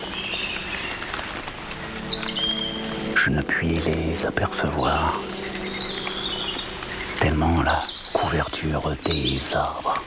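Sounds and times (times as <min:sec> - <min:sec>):
birds calling with high whistles and chirps: 0:00.0 - 0:10.0
steady rain: 0:00.0 - 0:10.0
speech: 0:03.2 - 0:05.3, 0:07.2 - 0:10.0.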